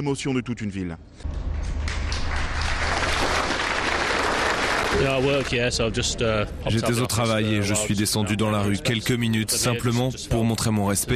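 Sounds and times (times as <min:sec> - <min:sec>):
speech: 0:00.0 - 0:01.5, 0:04.9 - 0:11.1
low rumbling hum: 0:01.0 - 0:08.5
large crowd applauding outdoors on a town square: 0:01.4 - 0:05.6.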